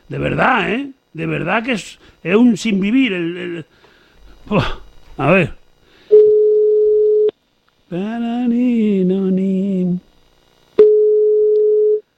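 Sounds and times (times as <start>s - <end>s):
speech: 0.1s - 5.6s, 7.9s - 10.1s
steady single-pitched telephone tone while redialing a call: 6.1s - 7.3s, 10.8s - 12.1s.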